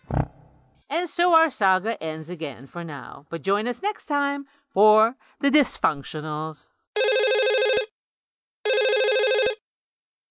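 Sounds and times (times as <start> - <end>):
speech: 0.9 - 6.7
telephone ringing with warbling electronic trill: 7.0 - 7.9, 8.6 - 9.6.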